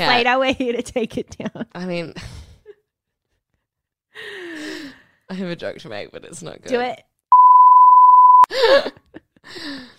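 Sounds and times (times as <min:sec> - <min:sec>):
speech: 0:00.0 - 0:02.4, 0:05.3 - 0:07.1, 0:08.5 - 0:09.9
loud steady censor bleep over a joke: 0:07.3 - 0:08.5.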